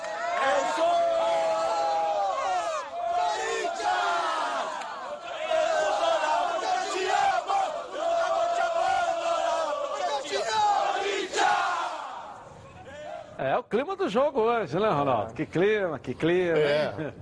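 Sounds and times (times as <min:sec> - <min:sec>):
football supporters chanting in unison in a stadium: 0:00.4 - 0:12.5
speech: 0:13.7 - 0:17.2.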